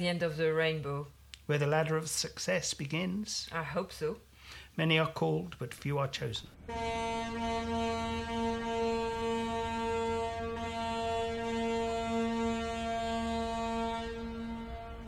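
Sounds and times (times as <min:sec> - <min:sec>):
speech: 0:00.0 - 0:08.6
foghorn blast: 0:06.6 - 0:15.0.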